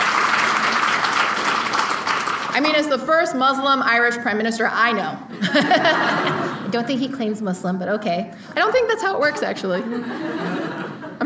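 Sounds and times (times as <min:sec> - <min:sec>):
audience applause: 0:00.0 - 0:02.6
speech: 0:02.6 - 0:10.7
laughter: 0:05.3 - 0:06.8, 0:09.2 - 0:11.2.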